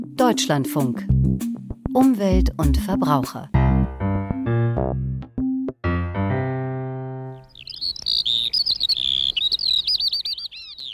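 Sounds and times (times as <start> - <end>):
speech: 0.2 - 3.5
brief musical phrase: 3.5 - 7.5
Eurasian skylark singing warbles and trills: 7.3 - 10.9.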